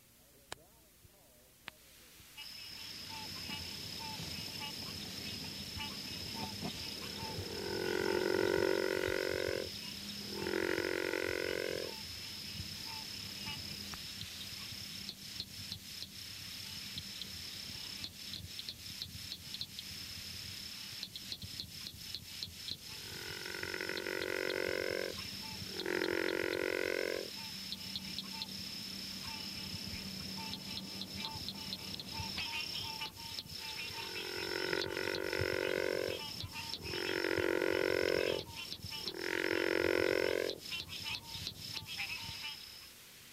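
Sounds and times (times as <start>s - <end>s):
faint night ambience: 0.0s - 43.3s
steady high insect drone: 2.3s - 43.3s
river frog giving low, rough growling calls: 2.7s - 13.6s, 22.9s - 42.8s.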